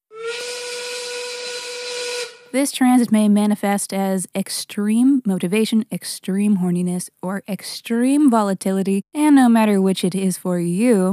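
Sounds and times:
1930s factory steam work whistle blowing: 0.1 - 2.6
speech: 2.5 - 11.1.

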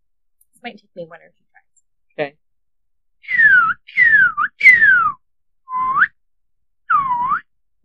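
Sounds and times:
speech: 0.6 - 1.5, 2.2 - 2.4
person whistling an imitation of a Northern Cardinal call: 3.2 - 6.2, 6.9 - 7.5.

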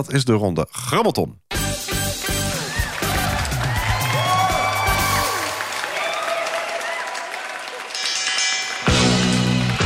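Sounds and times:
speech: 0.0 - 1.4
crowd cheering: 2.5 - 9.8
applause: 2.6 - 9.8
ringing bell jingle signalling the final quiz round: 7.9 - 9.2.

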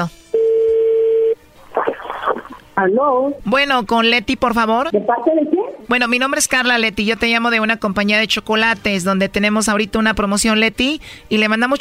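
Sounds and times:
speech: 0.0 - 0.2, 2.8 - 11.7
telephone dial tone: 0.4 - 1.4.

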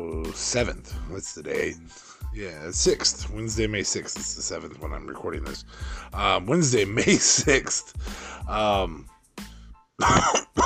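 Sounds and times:
speech: 0.0 - 10.6
person clearing throat: 10.0 - 10.6
person coughing: 10.0 - 10.6.

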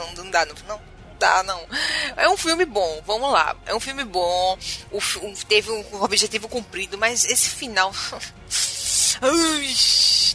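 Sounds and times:
speech: 0.3 - 10.3
person imitating a spray paint can hissing with their voice: 8.5 - 9.2.

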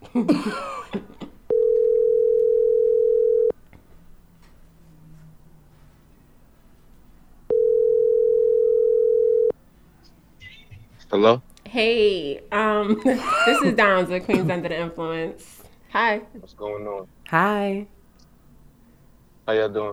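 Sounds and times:
laughter: 0.0 - 1.4, 12.8 - 14.9
speech: 0.2 - 0.8, 11.2 - 18.0, 19.5 - 19.9
telephone ringback tone while calling a contestant: 1.5 - 3.5, 7.5 - 9.5.

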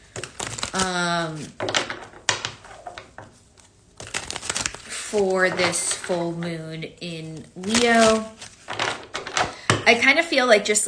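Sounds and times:
tarot cards being shuffled and drawn: 0.1 - 6.5, 7.6 - 9.5
speech: 0.7 - 2.0, 5.1 - 8.5, 9.9 - 10.8.

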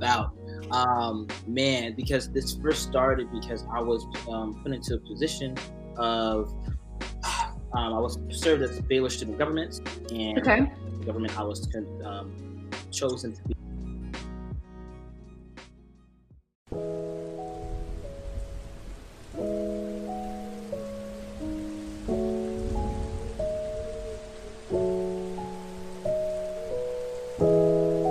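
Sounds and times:
speech: 0.0 - 6.8, 7.7 - 13.7, 16.7 - 17.1
steady rain: 7.2 - 7.5, 16.7 - 28.0.

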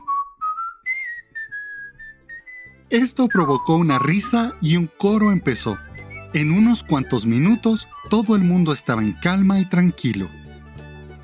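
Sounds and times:
person whistling a short melody: 0.0 - 7.3
speech: 2.9 - 10.4.

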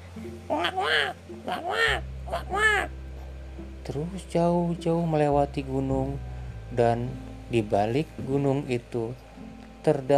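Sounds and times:
low steady drone: 0.0 - 10.1
speech: 0.2 - 3.0, 3.6 - 9.2, 9.8 - 10.1
crow cawing: 0.5 - 2.9.

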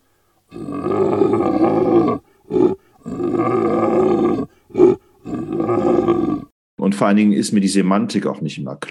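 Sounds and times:
grunted breath: 0.5 - 6.5
person imitating a lion roar: 0.5 - 6.5
speech: 7.0 - 8.8.

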